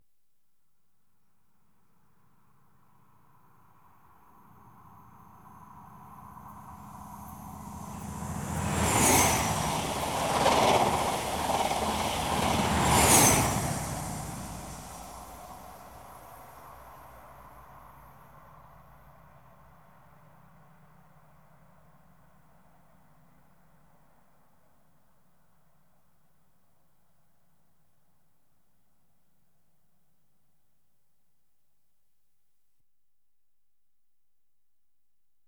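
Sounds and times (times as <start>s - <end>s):
Inter City 125 trains passing: 6.2s - 18.1s.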